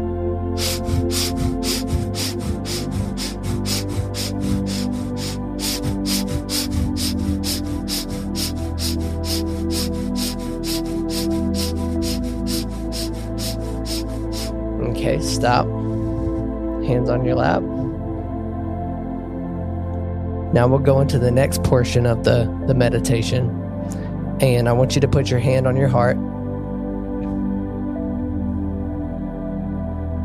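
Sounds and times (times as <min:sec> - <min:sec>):
low sustained musical drone: 0:00.0 - 0:30.2
rapid forceful breathing exercise: 0:00.6 - 0:14.8, 0:15.7 - 0:16.6
speech: 0:15.4 - 0:15.8, 0:16.9 - 0:17.7, 0:20.5 - 0:23.6, 0:24.4 - 0:26.2.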